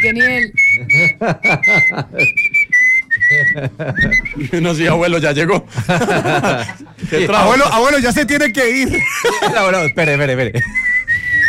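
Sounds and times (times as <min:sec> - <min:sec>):
speech: 0:00.0 - 0:02.6, 0:03.3 - 0:10.8
person whistling a slow bolero tune: 0:00.0 - 0:04.5, 0:09.7 - 0:11.4
laughter: 0:00.7 - 0:02.5, 0:03.2 - 0:07.8, 0:08.7 - 0:11.2.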